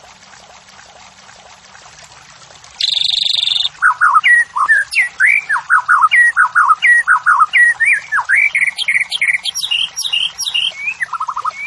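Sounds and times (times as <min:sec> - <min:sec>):
white-rumped shama singing rapid whistled notes: 0:02.8 - 0:11.6.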